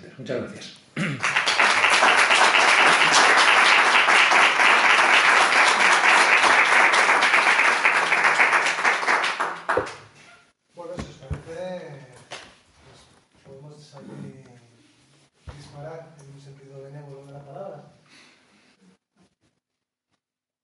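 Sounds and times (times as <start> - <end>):
speech: 0.2 - 1.4
audience applause after a talk: 1.2 - 10.0.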